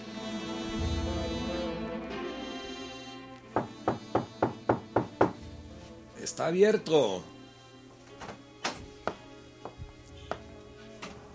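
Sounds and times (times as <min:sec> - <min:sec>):
soft sustained tonal sound: 0:00.0 - 0:11.3
firm knocking on a door at dawn: 0:03.6 - 0:05.7
speech: 0:06.3 - 0:07.3.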